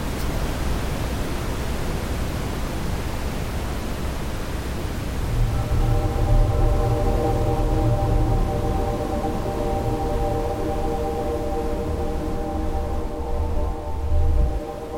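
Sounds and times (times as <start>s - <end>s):
faint humming tones: 0.0s - 14.9s
loud static-like white noise: 0.0s - 14.9s
deep rumble: 5.2s - 14.7s.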